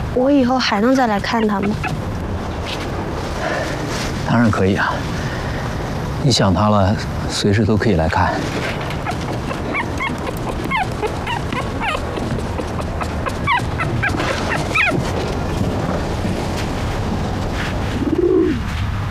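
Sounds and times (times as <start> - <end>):
speech: 0.1 - 2.0, 3.5 - 5.2, 6.2 - 8.9
steady rustling background: 0.8 - 5.7, 8.1 - 19.0
thin high whimpering chirps: 1.4 - 2.1, 8.9 - 15.0
low rounded pigeon coo: 1.5 - 2.1, 8.7 - 15.1, 17.9 - 18.7.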